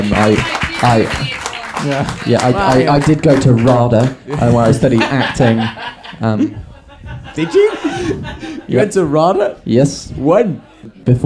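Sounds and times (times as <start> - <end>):
audience applause: 0.0 - 5.8
speech: 0.0 - 6.7, 7.4 - 11.2
laughter: 0.0 - 11.0.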